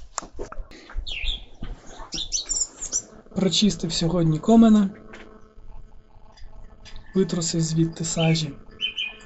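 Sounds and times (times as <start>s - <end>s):
small birds chirping and twittering outdoors on a sunny day: 0.7s - 3.2s, 7.8s - 9.2s
speech: 3.4s - 5.0s, 7.1s - 8.7s.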